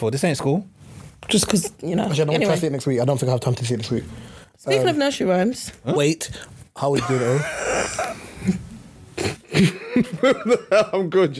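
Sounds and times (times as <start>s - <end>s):
speech: 0.0s - 8.6s, 9.2s - 11.3s
laughter: 6.9s - 8.6s, 9.2s - 11.1s
raspy coughs: 7.0s - 9.8s.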